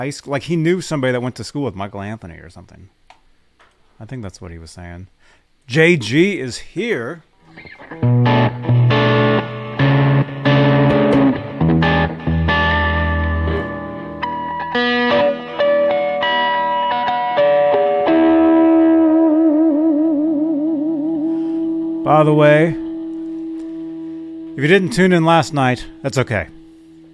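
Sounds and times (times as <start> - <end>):
speech: 0.0 - 3.1, 4.0 - 8.4, 22.2 - 22.8, 24.6 - 26.6
distorted electric guitar with Floyd Rose playing chugging riffs and whammy-bar dives: 7.4 - 27.1.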